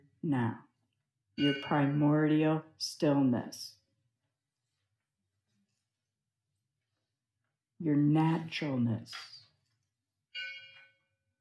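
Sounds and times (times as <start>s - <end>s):
speech: 0.2s - 0.7s, 1.4s - 3.8s, 7.8s - 9.4s
meditation bell struck: 10.3s - 11.2s.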